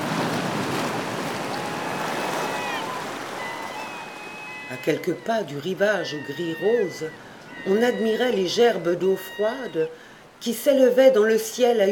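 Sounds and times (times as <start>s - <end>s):
violent waves crashing on a rocky coast: 0.0s - 9.5s
steady wind with whistling gusts: 0.0s - 11.9s
speech: 4.7s - 11.9s.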